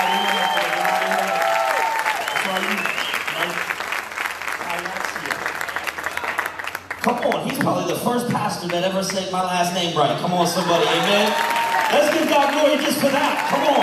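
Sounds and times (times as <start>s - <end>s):
audience cheers and voices: 0.0s - 2.9s, 10.2s - 13.8s
audience applause: 0.0s - 7.8s, 10.4s - 13.8s
speech: 7.6s - 13.8s.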